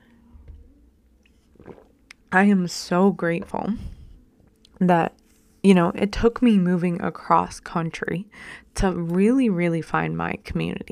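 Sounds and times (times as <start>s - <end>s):
sipping hot tea: 1.2s - 2.4s
slurping swallow: 1.3s - 2.3s
speech: 2.3s - 4.0s, 4.8s - 10.9s.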